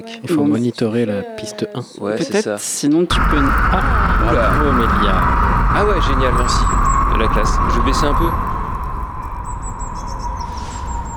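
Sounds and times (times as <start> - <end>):
speech: 0.0 - 8.5
birds chirping in a park: 3.1 - 11.1
continuous low traffic rumble of passing cars: 3.1 - 11.1
steady hum: 3.1 - 11.1.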